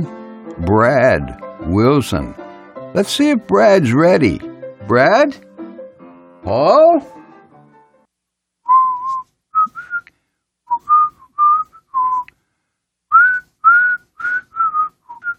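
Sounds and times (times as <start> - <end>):
speech: 0.0 - 5.5, 6.4 - 7.2
person whistling a short lilting tune: 8.7 - 10.1, 10.7 - 12.3, 13.1 - 15.3.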